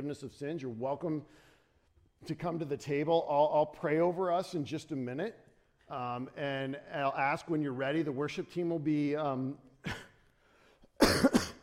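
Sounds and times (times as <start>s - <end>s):
speech: 0.0s - 1.5s, 2.2s - 10.0s
person coughing during a church communion service: 11.0s - 11.6s.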